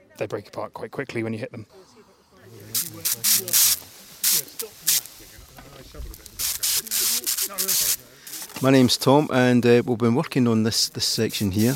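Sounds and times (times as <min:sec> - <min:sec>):
speech: 0:00.2 - 0:02.0, 0:02.8 - 0:05.1, 0:07.2 - 0:11.7
water spray hissing onto an excavated soil section: 0:02.5 - 0:08.8, 0:11.2 - 0:11.7.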